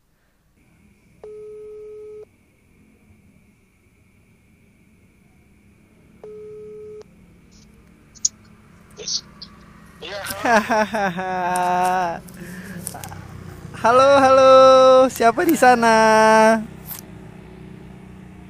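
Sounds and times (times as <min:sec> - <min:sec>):
telephone ringback tone while placing a phone call: 0:01.2 - 0:02.3, 0:06.2 - 0:07.1
laughter: 0:10.0 - 0:14.7
speech: 0:10.1 - 0:12.3, 0:13.8 - 0:16.7.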